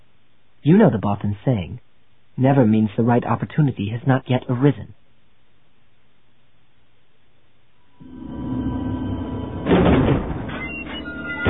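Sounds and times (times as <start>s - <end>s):
speech: 0.6s - 5.0s
heavy double doors being dragged apart: 8.0s - 11.4s
heavy double door high squeak: 9.6s - 11.4s.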